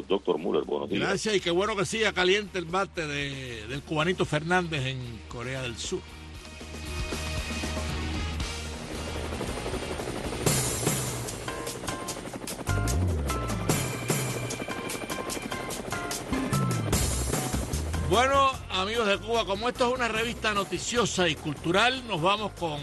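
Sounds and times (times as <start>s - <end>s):
speech: 0.1s - 6.7s, 18.2s - 22.8s
helicopter rotor chopping: 6.7s - 22.8s.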